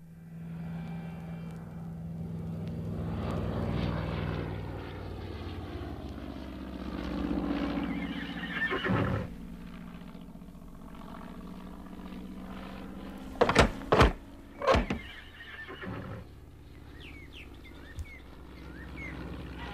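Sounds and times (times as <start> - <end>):
propeller aeroplane engine sound effect from a radio play: 0.0 - 19.7.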